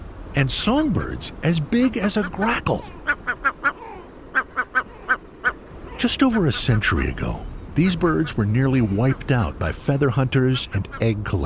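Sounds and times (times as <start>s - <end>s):
speech: 0.4s - 3.4s, 6.0s - 11.4s
Great Black-backed Gull barking calls: 2.1s - 6.0s, 8.2s - 9.6s.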